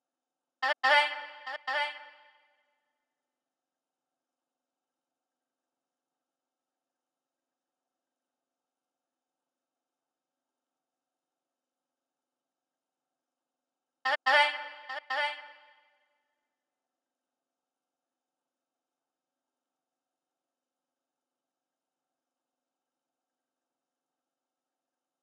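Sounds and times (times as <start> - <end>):
vocal melody loop in D minor: 0.6 - 2.2, 14.1 - 15.6.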